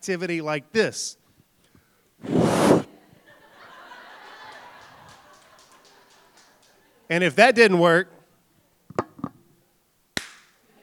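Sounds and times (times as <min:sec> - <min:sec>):
speech: 0:00.0 - 0:01.2, 0:07.1 - 0:08.2
laughter: 0:03.2 - 0:07.1
hand slapping sides of a game console: 0:10.2 - 0:10.5.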